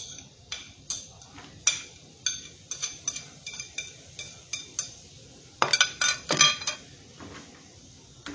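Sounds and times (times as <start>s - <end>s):
utensils clinking and tapping against a cooking pan as tomato and onion are added: 0.0s - 5.0s, 5.6s - 6.9s.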